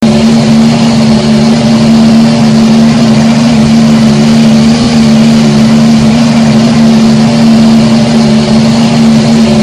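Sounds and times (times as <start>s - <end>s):
engine exhaust idling: 0.0s - 9.6s.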